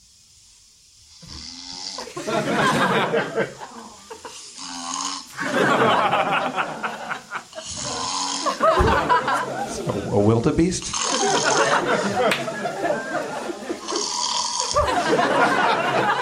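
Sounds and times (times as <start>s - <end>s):
man snoring loudly: 1.1s - 2.3s, 3.5s - 5.6s, 7.5s - 8.8s, 10.8s - 12.2s, 13.8s - 15.0s
laughter: 2.0s - 4.5s, 5.3s - 10.4s, 11.0s - 16.2s
speech: 2.2s - 3.6s, 8.8s - 12.7s.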